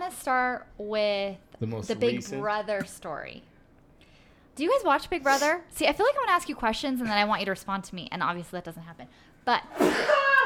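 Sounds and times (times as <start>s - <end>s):
speech: 0.2s - 3.5s, 4.6s - 10.2s
sneeze: 9.7s - 10.4s.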